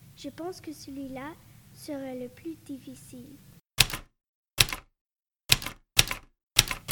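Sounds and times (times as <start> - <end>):
speech: 0.2 - 3.5
typewriter clacks: 3.8 - 4.9, 5.5 - 6.9.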